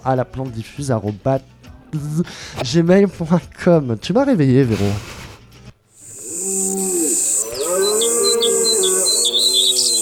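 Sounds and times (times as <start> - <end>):
speech: 0.0 - 5.2
birds chirping in quick repeated bursts: 6.0 - 10.0
cow mooing: 6.0 - 10.0.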